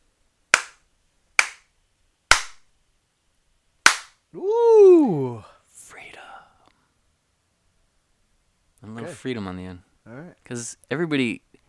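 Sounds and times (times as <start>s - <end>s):
hand slaps: 0.5s - 2.7s, 3.8s - 4.2s
speech: 9.1s - 9.9s, 10.5s - 11.5s.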